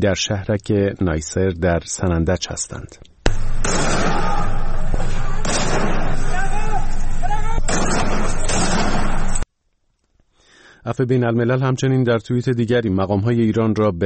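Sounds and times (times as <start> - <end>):
speech: 0.0 - 4.4, 10.9 - 14.0
crowd noise: 3.3 - 9.4
gunshots from security forces firing at homes in Sanandaj: 3.3 - 9.4
people shouting: 3.6 - 9.4.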